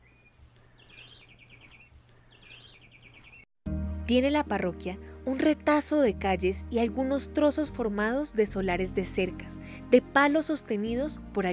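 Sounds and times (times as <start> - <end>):
tropical birds trilling in orchard trees: 0.0 - 3.5
speech: 4.1 - 11.5.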